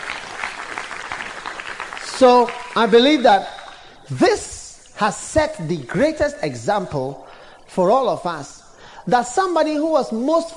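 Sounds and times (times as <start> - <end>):
audience applause: 0.0 - 4.0
speech: 2.2 - 3.5, 4.1 - 10.5.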